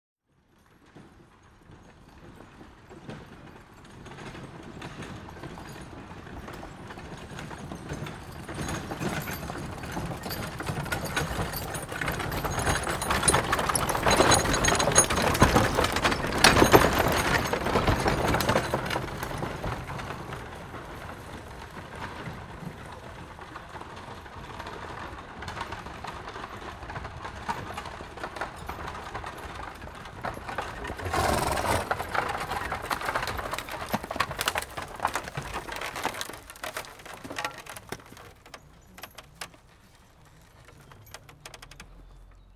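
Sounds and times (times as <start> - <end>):
wagons: 6.8 - 21.9, 25.5 - 42.5.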